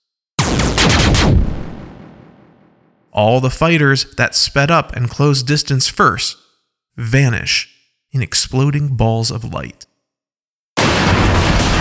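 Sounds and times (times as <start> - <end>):
spaceship cannons and bomber turrets firing: 0.4 - 2.7, 10.8 - 11.7
speech: 3.2 - 9.9.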